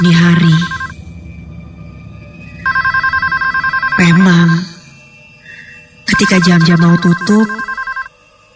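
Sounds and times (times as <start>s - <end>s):
low hum: 0.0s - 7.7s
office telephone ringing with electronic trill: 0.4s - 0.9s, 2.6s - 4.6s, 6.1s - 8.1s
speech: 6.3s - 7.6s.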